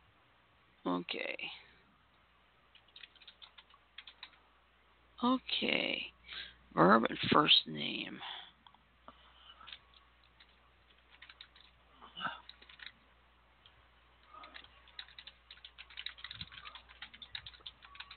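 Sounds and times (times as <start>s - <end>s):
speech: 1.0s - 1.7s, 5.2s - 8.4s
typing on a computer keyboard: 2.7s - 4.4s, 9.7s - 11.8s, 12.4s - 13.0s, 14.2s - 18.1s.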